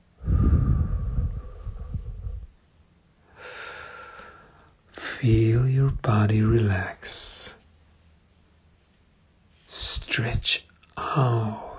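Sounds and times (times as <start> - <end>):
deep breathing during a guided relaxation exercise lying on the back: 0.2 - 2.6, 3.2 - 5.2
speech: 5.2 - 7.3, 10.2 - 11.6.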